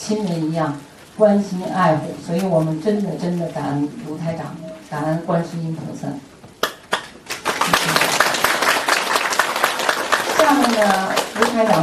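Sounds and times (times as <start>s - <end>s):
speech: 0.1s - 6.3s, 10.6s - 11.8s
crowd applauding: 6.6s - 11.8s.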